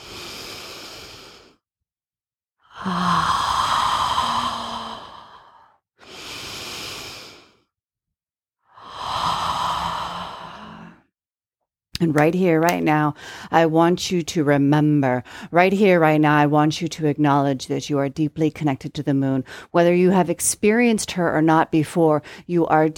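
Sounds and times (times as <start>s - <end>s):
deep cleansing breaths during a guided breathing exercise: 0.0s - 1.7s, 2.7s - 7.8s, 8.7s - 11.1s, 13.1s - 13.6s, 15.2s - 15.5s
speech: 2.8s - 3.1s, 12.0s - 22.9s.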